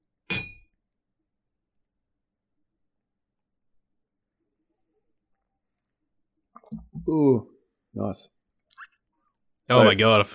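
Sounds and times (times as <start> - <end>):
glasses of rum clinking in a toast: 0.3 - 0.7
speech: 6.7 - 8.4, 9.7 - 10.3.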